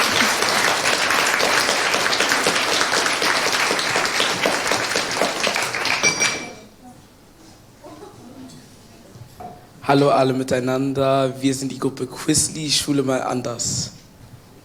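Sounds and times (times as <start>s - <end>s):
audience applause welcoming students presenting a school project: 0.0s - 6.6s
speech: 9.9s - 14.0s.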